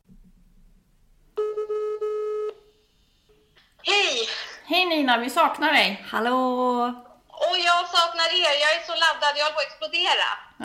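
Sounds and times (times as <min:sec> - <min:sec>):
telephone call tone: 0:01.4 - 0:02.6
speech: 0:04.9 - 0:10.6.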